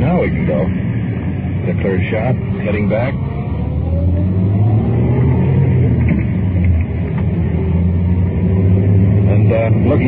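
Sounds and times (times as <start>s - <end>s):
car engine accelerating through a U-turn in traffic: 0.0s - 10.0s
road and interior rumble: 0.0s - 10.0s
speech: 0.3s - 1.0s, 1.6s - 4.6s, 9.9s - 10.0s.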